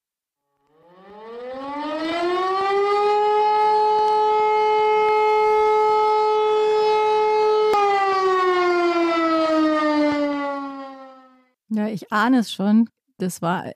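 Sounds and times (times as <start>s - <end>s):
civil defense warning siren wailing: 0.6s - 11.6s
speech: 12.1s - 13.7s.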